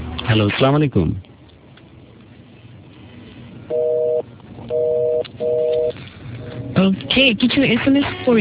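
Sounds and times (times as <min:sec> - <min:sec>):
speech: 0:00.3 - 0:01.3, 0:07.2 - 0:08.3
dual-pitched telephone line beeps while redialing after disconnection: 0:03.7 - 0:05.9.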